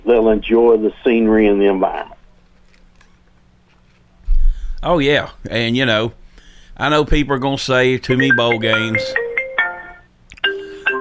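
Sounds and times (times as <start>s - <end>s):
speech: 0.1s - 2.1s, 4.8s - 6.2s, 6.8s - 9.2s
phone ringtone playing a bright electronic melody: 8.1s - 10.9s.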